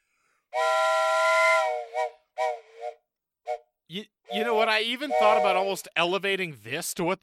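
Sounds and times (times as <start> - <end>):
whistle blasts with a steam-whistle tone: 0.6 - 3.6, 4.3 - 5.7
speech: 3.9 - 7.2.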